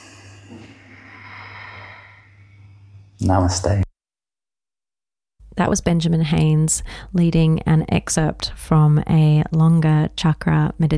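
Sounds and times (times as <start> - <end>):
deep exhalation during a guided chakra meditation: 0.0 - 3.0
speech: 3.2 - 3.8, 5.6 - 10.9.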